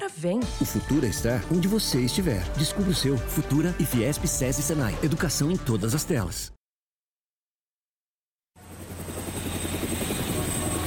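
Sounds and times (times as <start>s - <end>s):
speech: 0.1s - 6.6s
helicopter rotor noise: 8.6s - 10.8s.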